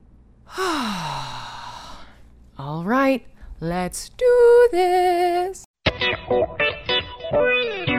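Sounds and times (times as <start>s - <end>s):
deep breath let out as a long voiced sigh during guided group breathing: 0.5s - 2.2s
speech: 0.6s - 1.1s, 2.6s - 6.7s, 7.3s - 7.8s.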